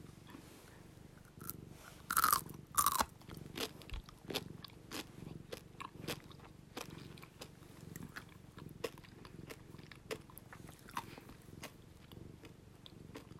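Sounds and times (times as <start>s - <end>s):
person crunching a gummy pretzel snack: 1.4s - 11.8s
chewing clicks: 2.2s - 13.3s.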